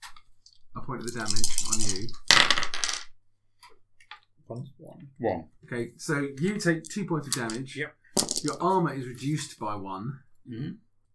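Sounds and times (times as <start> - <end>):
several dice clattering across a hard tabletop: 0.5 - 3.2, 6.5 - 8.8
speech: 0.9 - 2.6, 4.5 - 10.8.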